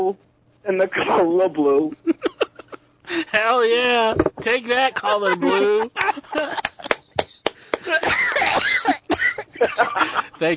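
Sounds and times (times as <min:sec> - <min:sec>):
speech: 0:00.1 - 0:02.2, 0:03.1 - 0:06.6, 0:09.6 - 0:10.5
laughter: 0:02.0 - 0:02.8, 0:04.8 - 0:07.1, 0:07.8 - 0:10.4
sharp hacking coughs: 0:07.8 - 0:10.2.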